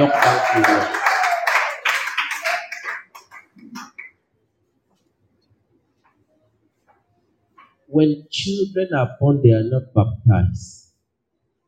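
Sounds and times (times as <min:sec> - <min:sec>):
speech: 0:00.0 - 0:01.0, 0:07.9 - 0:10.8
audience clapping: 0:00.0 - 0:04.2.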